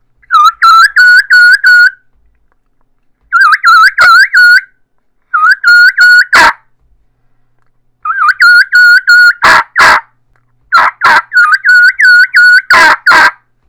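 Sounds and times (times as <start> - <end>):
turkey keekee runs: 0.2 - 2.0, 3.3 - 4.7, 5.3 - 6.6, 8.0 - 10.1, 10.7 - 13.4.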